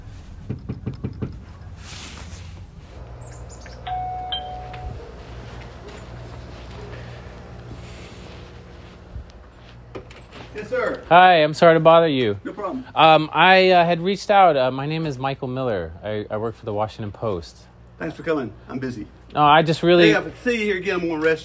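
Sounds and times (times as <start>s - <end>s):
steady low outdoor hum: 0.0s - 21.4s
sharp knocks on a front door in Salisbury: 0.4s - 1.4s
chirps: 3.1s - 4.9s
faint chime-like tone: 3.9s - 5.0s
speech: 10.6s - 21.4s.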